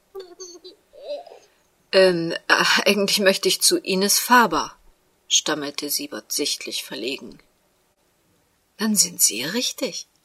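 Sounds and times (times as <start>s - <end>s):
baby laughing: 0.2s - 1.5s
speech: 1.9s - 7.5s, 8.8s - 10.1s.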